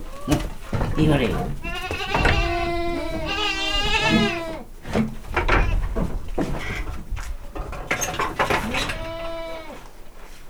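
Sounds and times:
domestic goat kids being chased out of a goat pen in a farmyard: 0:00.0 - 0:10.2.

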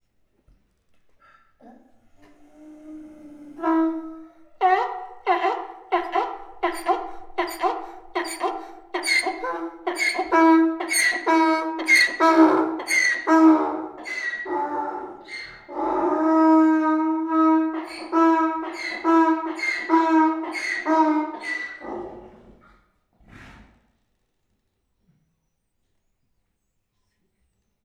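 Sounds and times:
Hungarian lowland donkey braying in a zoo: 0:01.6 - 0:22.3.

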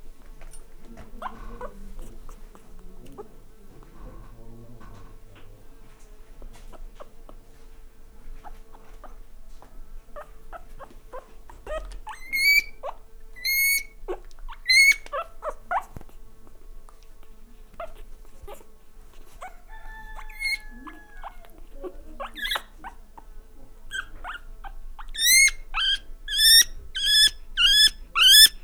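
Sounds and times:
male guinea pig in a farmyard: 0:10.2 - 0:16.1, 0:19.3 - 0:23.3, 0:23.9 - 0:28.6.

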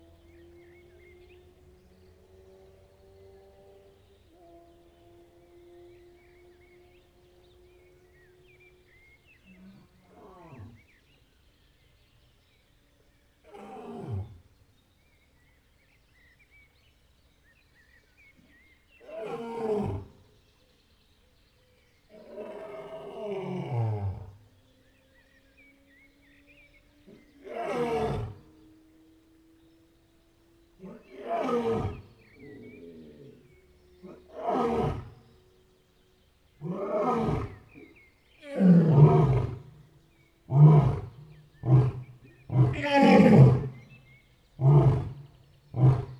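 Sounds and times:
lion roaring at Jaszbereny zoo: 0:22.1 - 0:24.4, 0:27.0 - 0:28.6, 0:30.8 - 0:35.5, 0:36.6 - 0:46.1.

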